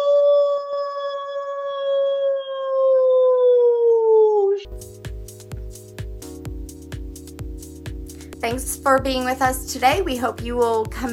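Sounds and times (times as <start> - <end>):
human voice imitating a wolf howl: 0.0 - 4.7
rhythmic beat-driven music: 4.7 - 11.1
speech: 8.4 - 11.1.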